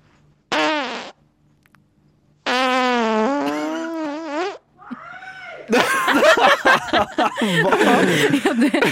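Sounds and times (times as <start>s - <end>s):
fart: 0.5s - 1.2s, 2.4s - 4.7s
laughter: 5.7s - 8.9s
speech: 7.4s - 8.9s.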